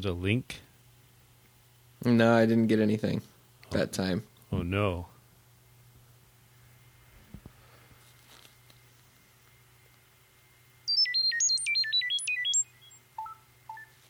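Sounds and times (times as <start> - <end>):
speech: 0.0 - 0.6, 2.0 - 5.1
low steady room hum: 0.0 - 14.0
phone message notification alert beeps: 13.2 - 14.0.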